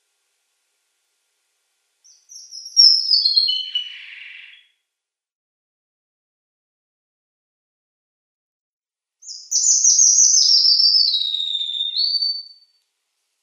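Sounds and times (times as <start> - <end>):
red avadavat twittering song: 2.0 - 4.8, 9.2 - 12.8.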